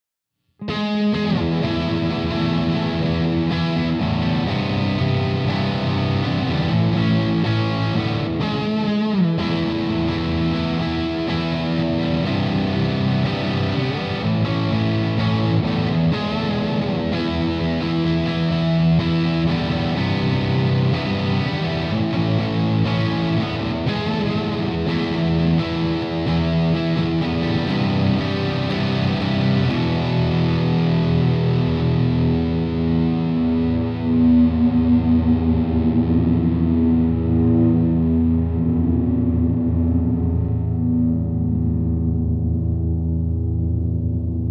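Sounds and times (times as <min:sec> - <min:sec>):
Les Paul electric guitar cranked overdrive with echo and spring reverb: 0:00.5 - 0:44.4.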